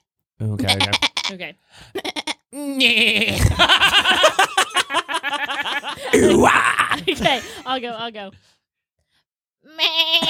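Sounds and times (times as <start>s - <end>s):
speech: 0.4s - 8.5s
person imitating a sheep bleat: 0.6s - 1.4s, 2.1s - 3.4s, 6.1s - 7.0s, 9.7s - 10.2s
laughter: 3.0s - 8.0s.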